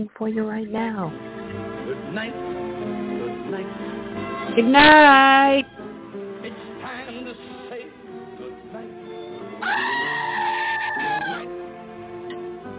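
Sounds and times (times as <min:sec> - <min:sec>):
speech: 0:00.0 - 0:03.9, 0:04.5 - 0:05.8
music playing: 0:00.6 - 0:12.7
goat bleating: 0:09.6 - 0:11.5.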